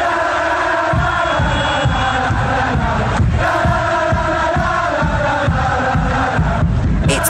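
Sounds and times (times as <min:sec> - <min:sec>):
large crowd of football fans chanting a rhythmic terrace song in unison: 0:00.0 - 0:07.2
steady pulsing beat: 0:07.1 - 0:07.2.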